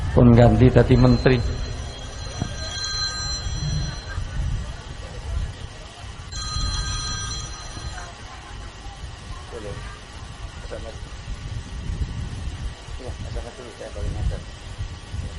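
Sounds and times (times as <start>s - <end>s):
low hum of voices at a religious study gathering: 0.0s - 11.6s
speech: 0.2s - 1.7s
telephone ringing during a religious study gathering: 0.7s - 4.5s, 6.3s - 8.2s.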